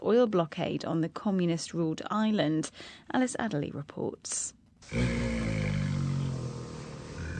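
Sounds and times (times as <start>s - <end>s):
speech: 0.1s - 5.4s
Bengal tiger cubs growling: 4.9s - 7.3s.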